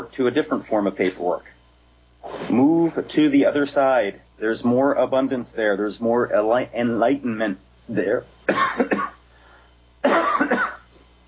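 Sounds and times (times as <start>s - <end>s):
speech: 0.1s - 1.6s, 2.3s - 9.1s
person coughing in harsh double bursts: 8.5s - 9.2s, 10.0s - 11.0s.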